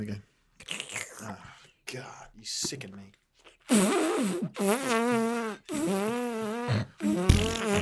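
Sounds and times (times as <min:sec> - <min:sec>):
speech: 0:00.0 - 0:07.8
buzzy fart noises: 0:03.7 - 0:07.8.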